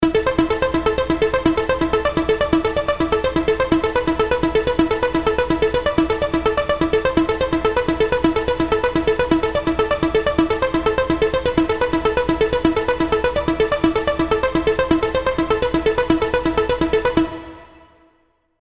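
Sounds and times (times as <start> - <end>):
dry synthesizer: 0.0 - 18.4.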